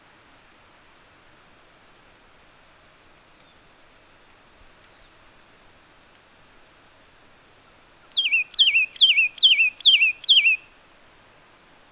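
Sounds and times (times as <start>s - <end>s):
Satin flycatcher Myiagra cyanoleuca whistled calls: 8.1s - 10.7s.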